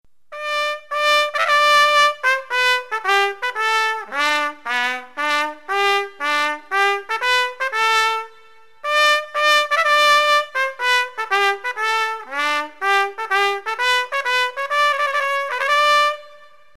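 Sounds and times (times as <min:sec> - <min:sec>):
trumpet: 0:00.3 - 0:16.7.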